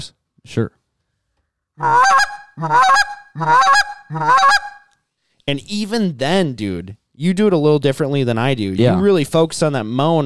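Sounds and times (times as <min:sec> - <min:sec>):
speech: 0:00.0 - 0:00.8, 0:01.8 - 0:04.8, 0:05.5 - 0:10.2
goose call blowing a rolling double cluck: 0:01.8 - 0:04.9.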